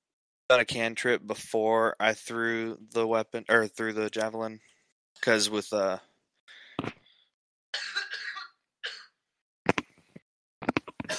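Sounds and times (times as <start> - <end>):
speech: 0.5 - 6.1
man coughing: 7.8 - 9.0.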